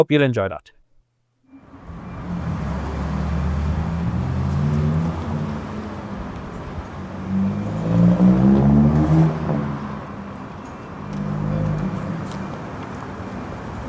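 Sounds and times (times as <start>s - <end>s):
speech: 0.0s - 0.8s
city traffic rumbling at night: 1.5s - 13.8s
vehicle engines passing: 1.5s - 13.8s.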